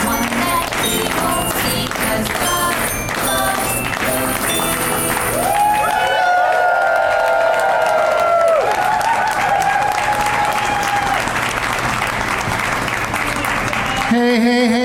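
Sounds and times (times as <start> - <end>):
Christmas version of a theme song: 0.0 - 6.1
audience clapping along to Christmas version of a theme song: 0.0 - 14.7
audience cheering and whooping: 3.6 - 11.9, 13.4 - 14.2.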